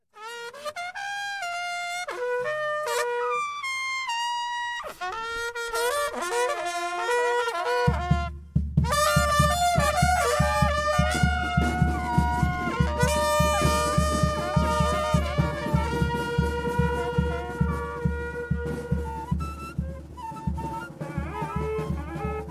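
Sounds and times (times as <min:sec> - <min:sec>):
folk music: 0:00.4 - 0:22.4.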